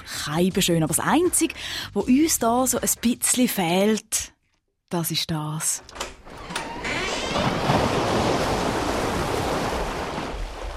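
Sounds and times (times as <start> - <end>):
speech: 0.2 - 4.3, 4.9 - 6.0
sea waves rushing: 7.3 - 10.7.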